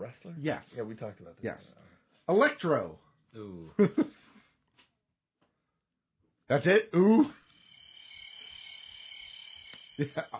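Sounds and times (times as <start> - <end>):
speech: 0.0 - 4.2, 6.5 - 7.4, 10.0 - 10.3
crickets chirping: 7.2 - 10.3.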